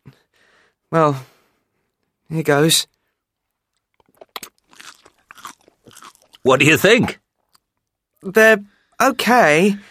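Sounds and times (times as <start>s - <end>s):
speech: 0.9s - 1.3s, 2.3s - 3.0s, 6.4s - 7.2s, 8.2s - 9.9s
crunching while eating salty caterpillars: 3.4s - 6.7s.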